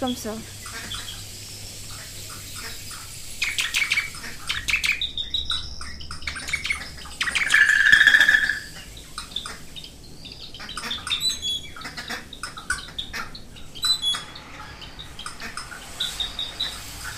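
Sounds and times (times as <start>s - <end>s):
speech: 0.0s - 0.6s
birds chirping and tweeting outdoors: 0.0s - 17.1s
soft steady hiss: 0.0s - 17.1s
bird warbling trill: 2.0s - 17.1s.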